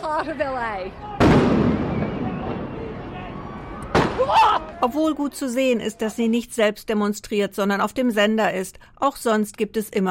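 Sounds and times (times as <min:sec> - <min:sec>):
crowd noise: 0:00.0 - 0:06.8
speech: 0:00.1 - 0:01.8, 0:04.2 - 0:10.1
rubber bullets fired, gunshot-like bang: 0:01.2 - 0:02.8, 0:03.9 - 0:04.2.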